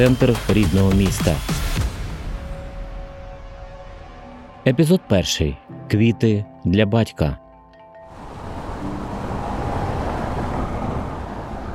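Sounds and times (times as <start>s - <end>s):
speech: 0.0s - 1.6s, 4.7s - 7.4s
car pulling up and stopping: 8.1s - 11.7s
road rumble: 8.1s - 11.7s.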